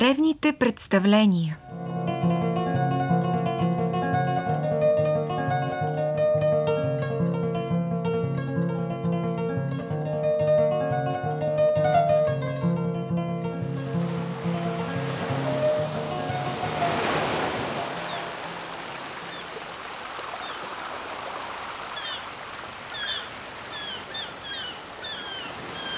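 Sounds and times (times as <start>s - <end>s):
speech: 0.0s - 2.2s
tonal music: 1.6s - 19.3s
Mediterranean sea waves washing against the harbour of Gozo: 13.3s - 25.9s
faint bird chirps: 22.9s - 25.9s.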